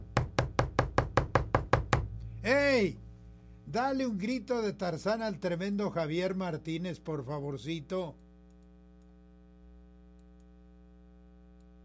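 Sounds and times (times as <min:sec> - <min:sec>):
knocking on a door: 0:00.0 - 0:02.1
speech: 0:02.4 - 0:03.0, 0:03.7 - 0:08.2.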